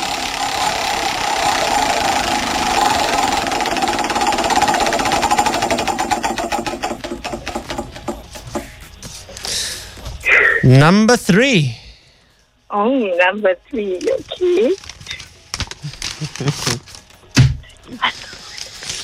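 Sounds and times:
prize wheel spinning at a cash giveaway: 0:00.0 - 0:08.2
steady hum: 0:00.0 - 0:19.0
speech: 0:10.7 - 0:11.8, 0:12.7 - 0:14.9, 0:16.4 - 0:16.9.

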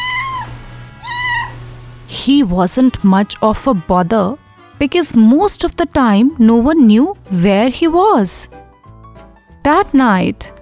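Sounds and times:
pot-bellied cat meowing: 0:00.0 - 0:01.6
low hum: 0:00.0 - 0:08.5
speech: 0:02.3 - 0:08.6, 0:09.6 - 0:10.6.

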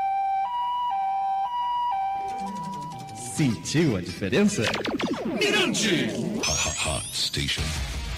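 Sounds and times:
loud ambulance siren in a hi-lo pattern: 0:00.0 - 0:04.3
speech: 0:03.4 - 0:08.0.

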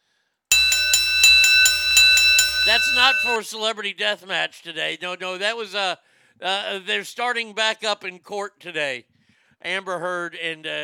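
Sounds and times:
bells ringing: 0:00.5 - 0:03.4
speech: 0:02.6 - 0:10.8.

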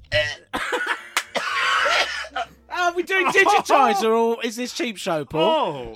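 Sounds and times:
person gagging and retching after sniffing something foul-smelling: 0:00.0 - 0:00.6, 0:01.3 - 0:02.5
speech: 0:03.3 - 0:05.9.

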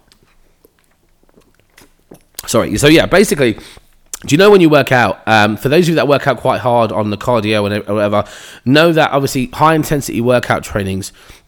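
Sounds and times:
sipping water: 0:00.0 - 0:04.4
speech: 0:02.5 - 0:11.4.

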